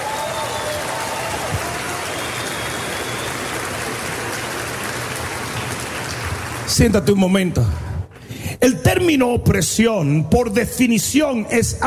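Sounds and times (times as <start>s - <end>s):
large crowd clapping: 0.0s - 7.9s
speech: 6.8s - 7.8s, 8.6s - 11.8s.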